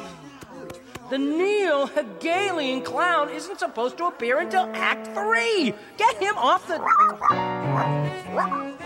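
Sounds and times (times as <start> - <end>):
speech: 1.1 - 8.8
dog barking and yipping in whiny bursts: 6.8 - 8.8.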